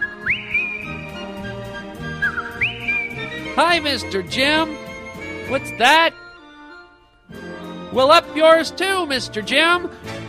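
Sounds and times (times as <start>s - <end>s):
person whistling a tune: 0.0s - 3.6s
speech: 3.6s - 4.8s, 5.5s - 6.2s, 7.9s - 10.2s.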